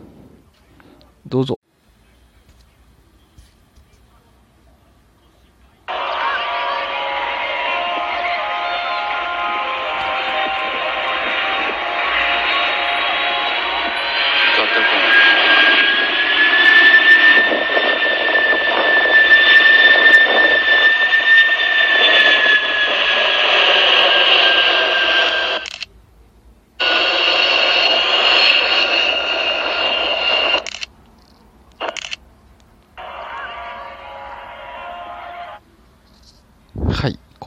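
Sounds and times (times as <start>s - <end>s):
speech: 1.3s - 1.6s
jet transport aircraft flying past at air show: 5.9s - 25.8s, 26.8s - 30.9s, 33.0s - 35.6s.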